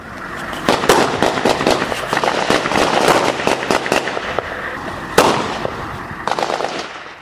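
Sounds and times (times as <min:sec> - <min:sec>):
gunfire around an Afghan forces post in a civilian house: 0:00.7 - 0:04.4, 0:05.2 - 0:07.1.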